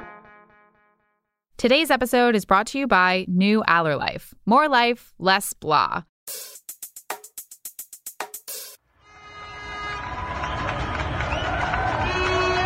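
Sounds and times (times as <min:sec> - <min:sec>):
speech: 0:01.6 - 0:06.5
residents cheering from windows and balconies for medical workers: 0:09.1 - 0:12.6.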